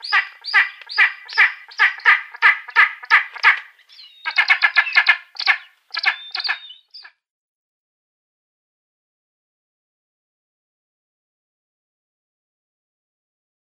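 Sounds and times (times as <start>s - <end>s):
Spanish imperial eagle giving harsh barking calls: 0.0s - 7.1s.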